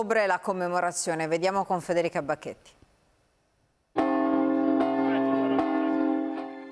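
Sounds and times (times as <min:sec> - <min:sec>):
speech: 0:00.0 - 0:02.8
church bells ringing in a festive peal: 0:04.0 - 0:06.7.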